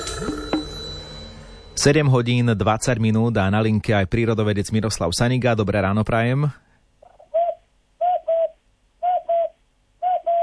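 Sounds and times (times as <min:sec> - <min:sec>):
speech: 0:01.8 - 0:06.6
person imitating a common cuckoo call: 0:07.0 - 0:10.4.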